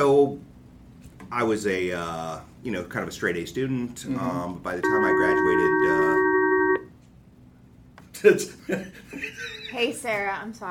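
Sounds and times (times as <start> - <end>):
speech: 1.3 - 6.1, 8.2 - 10.7
short electronic telephone ringtone: 4.8 - 6.8.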